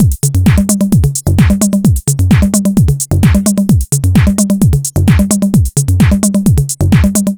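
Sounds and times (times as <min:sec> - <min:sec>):
digital breakbeat drum loop: 0:00.0 - 0:07.3.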